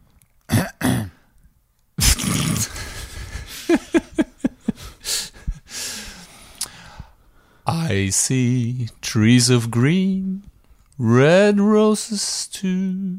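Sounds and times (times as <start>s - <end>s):
person with a coronavirus-affected throat clearing it: 0.5s - 1.2s, 2.0s - 2.9s
speech: 7.9s - 13.1s.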